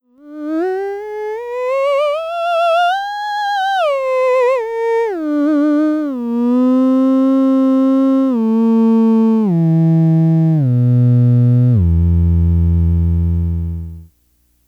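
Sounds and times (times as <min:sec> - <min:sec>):
theremin: 0:00.2 - 0:14.1.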